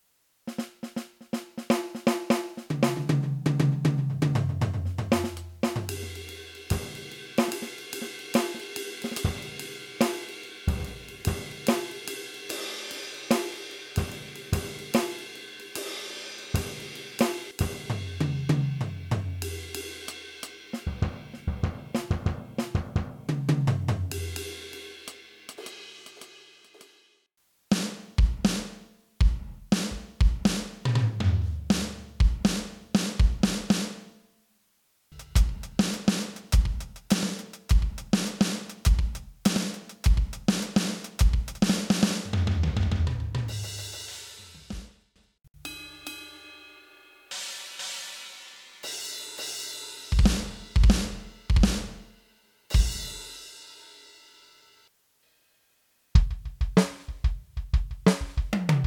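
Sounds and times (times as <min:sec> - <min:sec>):
acoustic drums on a sample pad: 0:00.0 - 0:27.1, 0:27.7 - 0:34.2, 0:35.1 - 0:46.7, 0:47.3 - 0:54.6, 0:56.2 - 0:58.8.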